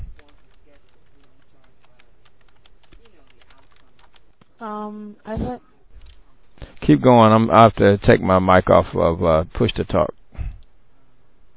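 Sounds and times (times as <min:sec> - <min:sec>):
low hum: 0:00.0 - 0:11.5
typing on a computer keyboard: 0:00.1 - 0:04.6
speech: 0:04.6 - 0:05.7, 0:06.9 - 0:10.2.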